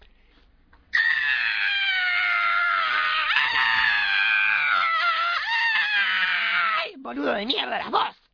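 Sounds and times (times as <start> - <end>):
woman's sustained scream of fright: 1.0 - 7.0
speech: 7.1 - 8.2.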